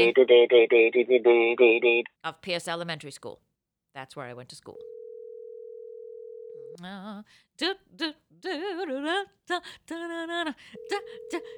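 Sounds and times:
speech: 0.0s - 4.9s, 6.8s - 11.5s
electronic ringing tone on a phone line: 4.8s - 6.7s, 10.7s - 11.5s.

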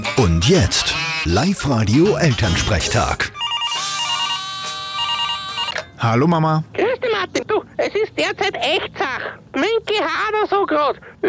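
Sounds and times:
speech: 0.2s - 3.4s, 6.0s - 6.8s, 7.9s - 11.2s
telephone ringing with electronic trill: 0.5s - 6.2s.

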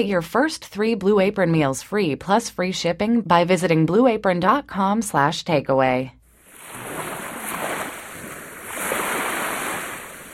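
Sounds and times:
speech: 0.0s - 6.2s
ocean waves crashing: 6.4s - 10.3s.

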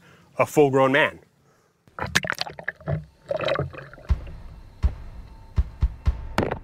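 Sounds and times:
speech: 0.4s - 1.3s, 2.0s - 2.2s
brick-weighted paddle splashing into water: 2.0s - 4.4s.

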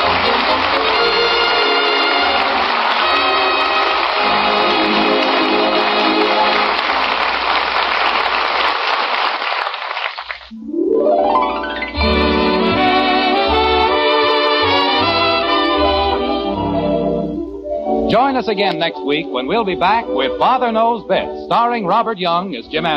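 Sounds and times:
orchestral music: 0.0s - 7.8s, 10.5s - 22.9s
rain falling: 0.0s - 10.5s
speech: 18.4s - 22.9s.

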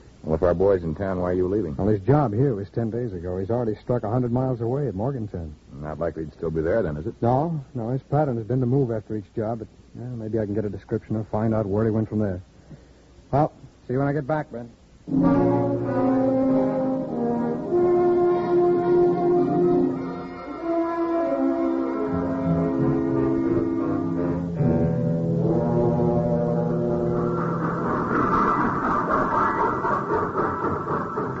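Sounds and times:
speech: 0.4s - 12.5s, 13.3s - 15.9s
train locomotive horn blaring: 15.1s - 27.3s
rumbling train noise: 25.4s - 31.3s.

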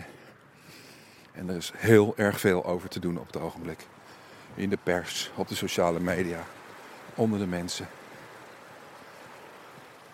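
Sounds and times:
fast-flowing river water rushing: 0.0s - 10.1s
speech: 1.4s - 4.0s, 4.6s - 6.6s, 7.2s - 8.0s.

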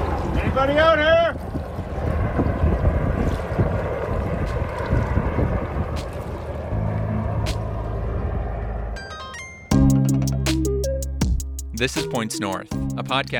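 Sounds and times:
buffeting wind noise: 0.0s - 8.9s
airboat engine roaring during ice rescue on Lake Huron: 0.0s - 13.3s
speech: 0.6s - 1.5s, 11.8s - 13.3s
tonal music: 6.7s - 13.3s.

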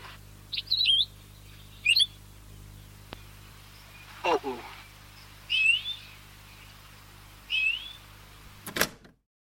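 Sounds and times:
faint low hum: 0.0s - 8.7s
endemic Hawaiian forest bird whistled calls on tape recording: 0.5s - 2.2s, 5.5s - 6.7s, 7.5s - 8.1s.

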